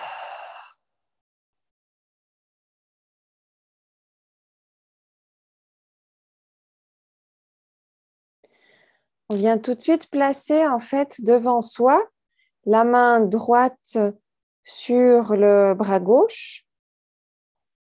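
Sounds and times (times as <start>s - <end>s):
breathy exhale during a guided breathing exercise: 0.0s - 0.9s, 8.5s - 9.1s
speech: 9.3s - 16.6s.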